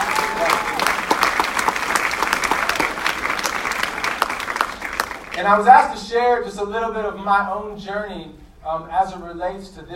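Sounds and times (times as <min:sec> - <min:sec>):
room full of people clapping: 0:00.0 - 0:05.4
speech: 0:05.4 - 0:09.9.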